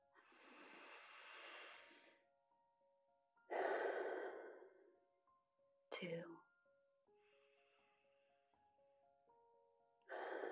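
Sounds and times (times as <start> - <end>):
person breathing deeply during a guided bedtime relaxation exercise: 0.2 - 2.2, 3.5 - 4.9, 10.1 - 10.5
speech: 6.0 - 6.5.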